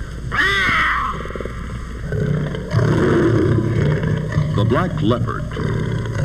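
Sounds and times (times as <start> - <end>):
puma crying: 0.3 - 6.2
puma purring: 1.2 - 6.2
speech: 4.6 - 5.8.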